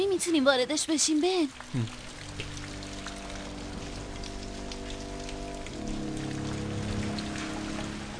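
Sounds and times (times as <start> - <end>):
steady rain pattering on a surface: 0.0 - 8.1
speech: 0.2 - 2.5
low droning hum: 1.6 - 8.1.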